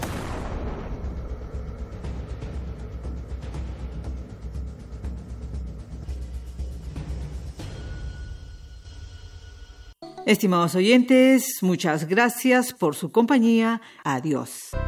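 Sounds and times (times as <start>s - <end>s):
large explosion: 0.0s - 3.6s
deep sustained rumble: 0.0s - 6.2s
speech: 10.2s - 14.7s.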